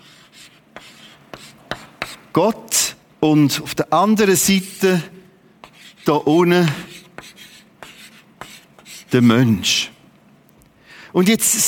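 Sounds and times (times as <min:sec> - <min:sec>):
pen or chalk drawing on a board: 0:00.0 - 0:02.3, 0:05.6 - 0:06.1, 0:06.9 - 0:09.1
speech: 0:02.4 - 0:05.2, 0:06.0 - 0:06.9, 0:09.1 - 0:09.9, 0:11.1 - 0:11.6.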